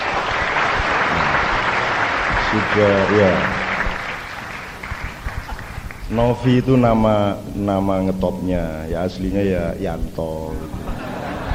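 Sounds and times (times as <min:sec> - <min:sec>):
audience applause after a gamelan performance: 0:00.0 - 0:06.2, 0:10.7 - 0:11.5
speech: 0:02.5 - 0:03.6, 0:06.1 - 0:11.0
laughter: 0:10.4 - 0:11.5.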